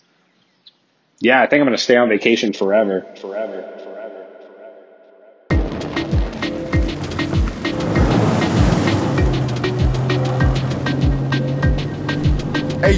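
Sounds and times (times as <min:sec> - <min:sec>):
speech: 0:01.2 - 0:04.0
rushing wind: 0:05.5 - 0:12.8
jet ski engine droning: 0:05.5 - 0:12.9
jet ski hull slapping over ocean waves in the Florida Keys: 0:05.5 - 0:12.9
water spray: 0:05.6 - 0:12.6.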